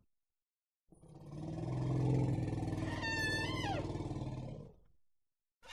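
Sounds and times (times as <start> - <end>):
elephant rough roar with a trumpet squeal: 1.2 - 4.6.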